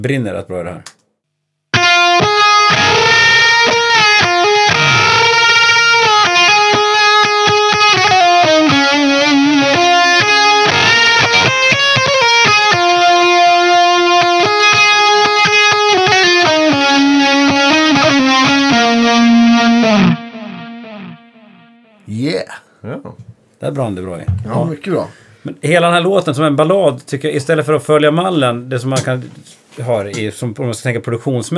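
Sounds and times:
speech: 0.0s - 1.0s, 23.6s - 31.5s
solo electric guitar through heavy fuzz and Univibe modulation: 1.7s - 22.0s.

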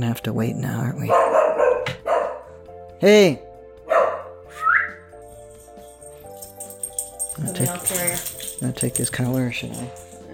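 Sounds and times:
speech: 0.0s - 2.0s, 3.0s - 3.4s, 7.4s - 10.0s
dog barking at mail carrier: 1.0s - 2.6s, 3.8s - 4.4s.

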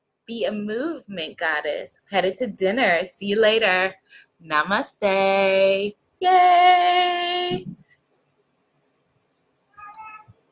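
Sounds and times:
speech: 0.3s - 7.8s
cat meowing: 9.7s - 10.4s.

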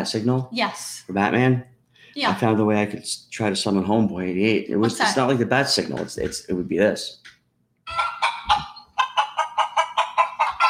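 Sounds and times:
speech: 0.0s - 7.3s
flock of chickens clucking: 7.9s - 10.6s.

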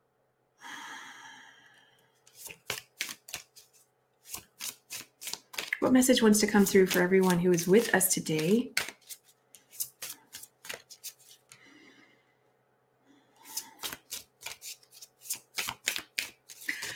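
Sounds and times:
tarot cards being shuffled by hand during a reading: 2.2s - 11.6s, 13.4s - 16.9s
speech: 5.8s - 8.8s.

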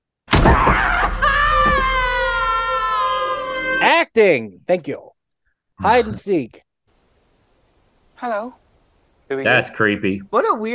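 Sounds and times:
woman screaming in a church: 0.5s - 3.5s
speech: 3.8s - 5.1s, 5.8s - 6.7s, 8.2s - 8.6s, 9.3s - 10.7s.

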